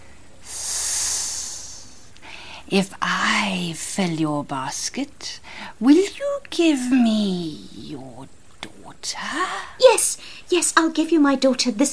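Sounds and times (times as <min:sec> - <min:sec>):
sustained hiss voicing a snake in a folk tale: 0:00.4 - 0:02.6
speech: 0:02.7 - 0:11.9.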